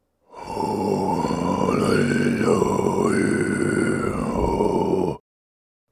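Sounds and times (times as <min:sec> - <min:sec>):
person singing: 0:00.5 - 0:05.2.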